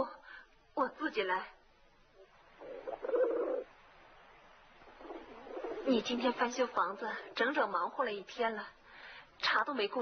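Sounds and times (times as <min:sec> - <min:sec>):
speech: 0:00.8 - 0:01.6, 0:05.8 - 0:08.8, 0:09.4 - 0:10.0
pigeons cooing in a cage: 0:02.6 - 0:03.7, 0:04.8 - 0:07.6.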